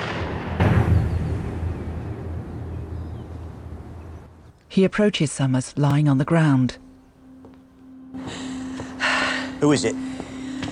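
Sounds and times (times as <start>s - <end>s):
single gunshot fired at a man during an armed standoff: 0.0s - 2.3s
speech: 4.8s - 6.8s, 9.6s - 10.2s.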